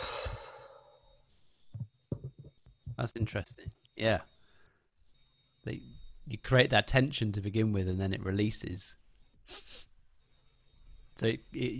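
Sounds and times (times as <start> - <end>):
soft exhale during a breathing exercise: 0.0 - 1.0
speech: 3.0 - 4.3, 5.6 - 9.9, 11.2 - 11.7.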